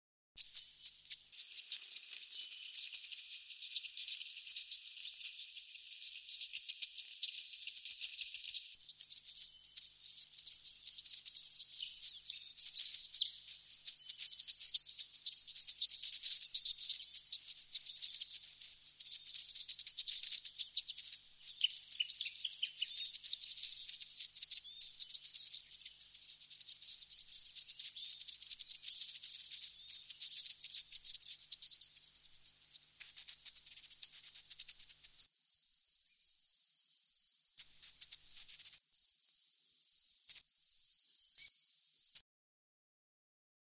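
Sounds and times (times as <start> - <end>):
striated thornbill: 0.4 - 36.6, 37.2 - 42.2.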